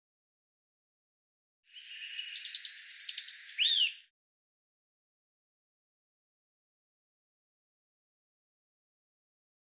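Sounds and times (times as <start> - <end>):
Eurasian blue tit calls with hiss, ticking and slurred notes: 1.8 - 4.1.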